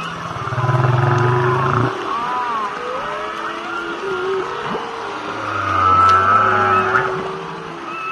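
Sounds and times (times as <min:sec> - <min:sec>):
whale long sliding moans and low tones recorded underwater: 0:00.2 - 0:08.1
higher wavering whale whistles underwater: 0:02.3 - 0:08.1.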